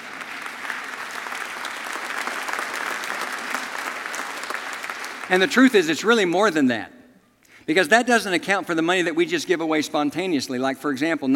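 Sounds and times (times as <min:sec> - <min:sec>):
crowd applauding a church's mission giving: 0:00.0 - 0:06.3
speech: 0:05.3 - 0:07.0, 0:07.7 - 0:11.3.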